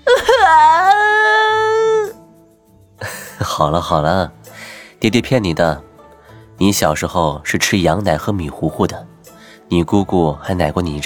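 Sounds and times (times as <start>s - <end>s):
child bursting into loud crying: 0.0s - 2.1s
speech: 3.6s - 4.4s, 5.0s - 5.9s, 6.6s - 9.1s, 9.7s - 11.0s.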